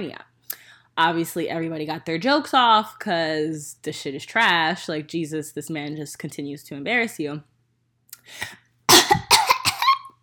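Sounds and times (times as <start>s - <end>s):
speech: 0.0s - 0.3s, 1.0s - 7.5s, 8.2s - 8.6s
person coughing: 8.9s - 10.2s.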